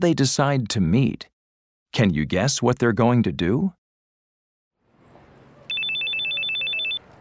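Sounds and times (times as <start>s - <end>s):
speech: 0.0s - 1.3s, 1.9s - 3.8s
telephone ringing with electronic trills: 5.7s - 7.1s.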